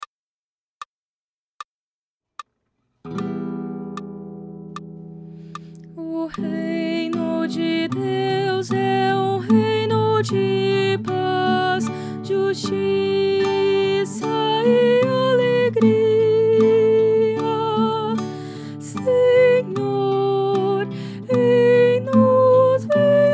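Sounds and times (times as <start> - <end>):
soprano singing: 5.9 - 23.3.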